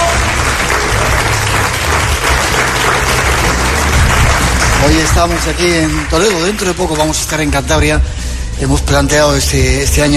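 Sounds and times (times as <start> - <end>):
large audience applause in a reverberant castle hall: 0.0 - 7.3
speech: 4.8 - 10.1.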